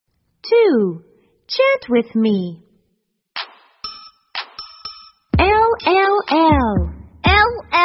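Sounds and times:
speech: 0.5 - 2.7, 5.9 - 6.9
bell clanging: 3.8 - 5.3.

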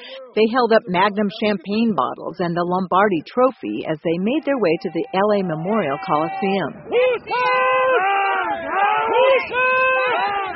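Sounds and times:
speech: 0.4 - 10.4
fans cheering and shouting at a victory parade: 4.5 - 10.5.

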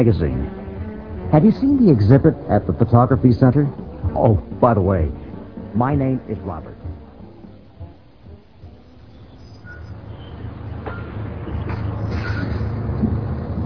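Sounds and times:
speech: 0.0 - 0.6, 1.3 - 6.8
bus engine rumbling as it approaches: 0.0 - 13.6
bus squeals and hisses as it slows to a stop: 8.8 - 13.2.

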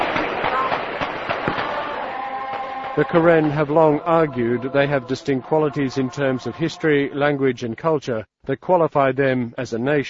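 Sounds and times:
gunshot cracks from nearby jungle: 0.0 - 4.0
speech: 3.0 - 10.0.

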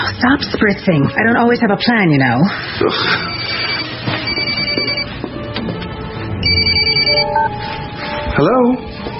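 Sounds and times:
speech: 0.2 - 3.7, 8.4 - 8.9
cell phone bright electronic ringtone: 3.1 - 5.1, 6.4 - 7.6.

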